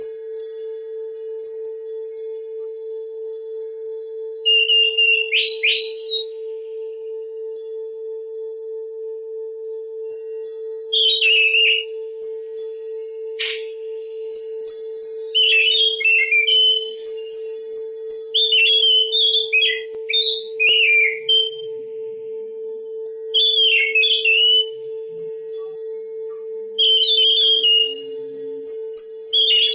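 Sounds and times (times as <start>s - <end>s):
Oriental magpie-robin song: 4.5s - 6.5s, 10.8s - 12.0s, 13.4s - 13.8s, 15.0s - 21.7s, 23.4s - 24.8s, 25.5s - 29.7s.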